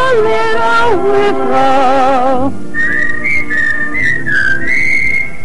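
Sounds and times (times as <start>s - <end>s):
speech: 0.1s - 2.6s
person whistling a short tune: 2.7s - 5.4s.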